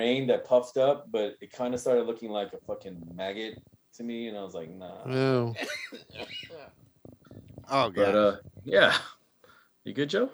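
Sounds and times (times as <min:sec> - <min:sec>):
speech: 0:00.0 - 0:06.8, 0:07.7 - 0:09.2, 0:09.8 - 0:10.3
person coughing harshly: 0:05.3 - 0:06.7.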